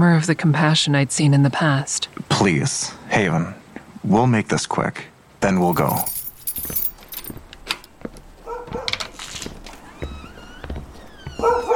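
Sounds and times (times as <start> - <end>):
speech: 0.0 - 6.8
jingling metallic clinks: 5.6 - 7.5
light rustling: 5.7 - 10.0
dog barking: 8.4 - 9.1, 11.4 - 11.7
dog whining: 11.2 - 11.7.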